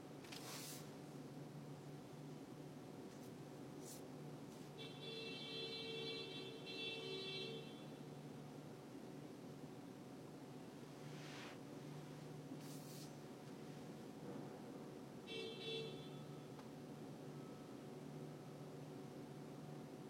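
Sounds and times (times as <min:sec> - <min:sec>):
steady low engine and traffic rumble: 0:00.9 - 0:20.0
car horn honking in traffic: 0:04.8 - 0:08.0, 0:15.3 - 0:16.4.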